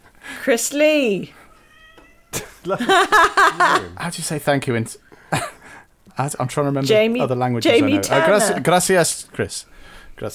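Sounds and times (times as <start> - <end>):
speech: 0.4 - 1.4, 2.6 - 5.1, 6.2 - 10.3
cat meowing: 1.4 - 2.4
laughter: 2.4 - 4.0.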